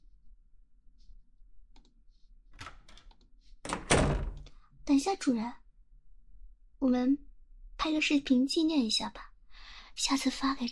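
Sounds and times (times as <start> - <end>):
door latch and handle clicking open: 2.6 - 4.4
speech: 4.9 - 5.6, 6.8 - 9.3, 10.0 - 10.7.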